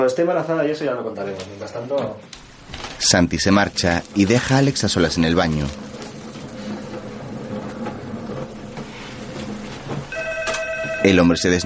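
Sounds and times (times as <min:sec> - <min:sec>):
speech: 0:00.0 - 0:06.0, 0:11.0 - 0:11.6
dense steady noise: 0:00.0 - 0:11.6
telephone ringing with short electronic tone: 0:10.1 - 0:11.6.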